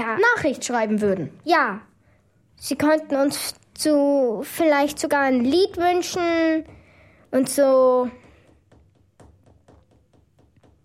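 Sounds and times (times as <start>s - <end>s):
speech: 0.0s - 1.9s, 2.6s - 8.2s
fingers drumming on a tabletop: 8.0s - 10.8s.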